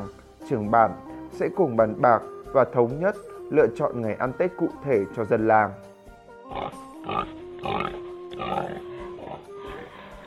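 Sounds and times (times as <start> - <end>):
speech: 0.0 - 5.9
male pig grunting and squealing before slaughter: 6.5 - 10.2.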